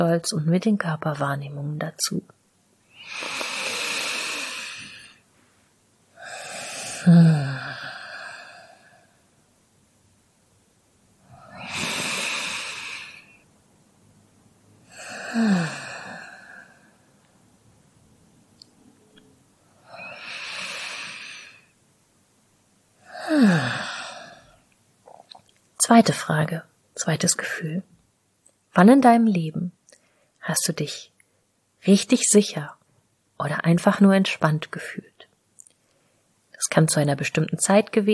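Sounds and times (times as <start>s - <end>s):
speech: 0.0s - 2.4s, 7.0s - 7.4s, 25.9s - 27.9s, 28.8s - 29.8s, 30.4s - 31.1s, 31.8s - 32.8s, 33.4s - 35.2s, 36.6s - 38.1s
slow deep breaths with breathy inhales and drawn-out exhales: 2.9s - 5.3s, 6.2s - 9.3s, 11.2s - 13.5s, 14.8s - 17.1s, 19.8s - 21.8s, 23.0s - 24.7s.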